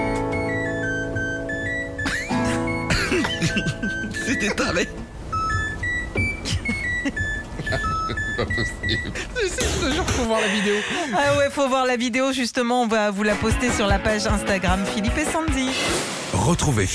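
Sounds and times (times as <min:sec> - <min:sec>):
dishwasher electronic beeps playing a TV theme melody: 0:00.0 - 0:10.2
people laughing: 0:02.0 - 0:04.9, 0:06.4 - 0:11.5
speech: 0:03.6 - 0:05.2, 0:08.4 - 0:16.9.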